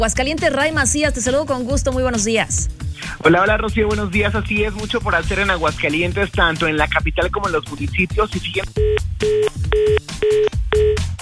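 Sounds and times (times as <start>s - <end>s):
speech: 0.0s - 10.0s
telephone keypad tones: 8.8s - 11.0s.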